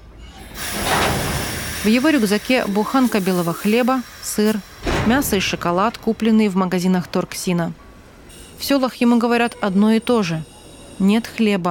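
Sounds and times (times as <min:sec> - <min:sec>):
train at a small station hissing: 0:00.4 - 0:05.7
speech: 0:01.8 - 0:07.8, 0:08.6 - 0:11.6.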